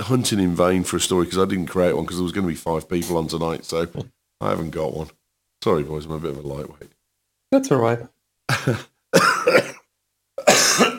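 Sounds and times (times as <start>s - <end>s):
speech: 0.1s - 9.7s
coughing and throat clearing: 8.5s - 10.9s.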